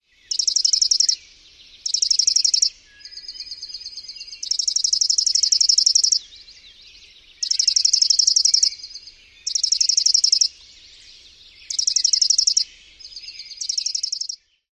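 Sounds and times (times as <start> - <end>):
Chipping Sparrow rapid-fire dawn song: 0.0 - 14.6.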